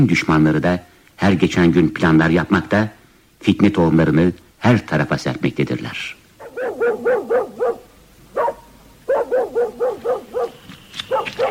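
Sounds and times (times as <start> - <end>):
speech: 0.0 - 6.2
mangy dog barking in front of a house in Tabriz: 6.4 - 11.5.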